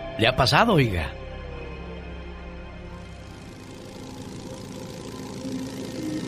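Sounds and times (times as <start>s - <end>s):
speech: 0.2s - 1.2s
motorcycle engine idling: 3.0s - 6.2s.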